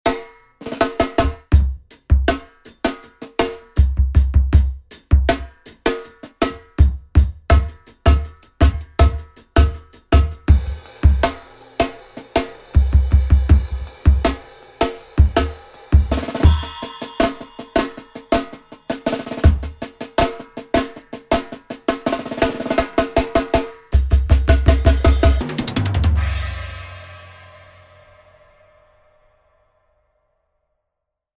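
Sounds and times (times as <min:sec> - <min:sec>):
funk drum soundtrack loop: 0:00.2 - 0:26.9.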